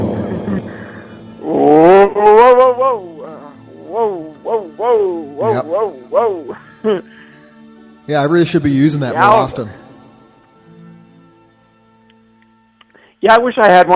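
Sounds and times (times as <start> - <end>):
loud voice howling with heavy echo effect during a radio show: 0.0 - 6.6
speech: 8.1 - 9.8, 13.2 - 13.9.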